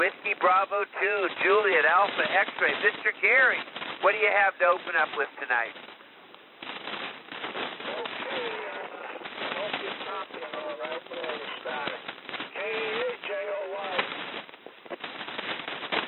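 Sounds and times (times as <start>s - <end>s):
faint garbled voice on a narrow-band ham transmission: 0.0s - 5.8s, 7.9s - 14.1s
speech: 0.0s - 5.9s
heavy crackling radio static on a narrow-band ham transmission: 0.0s - 16.0s.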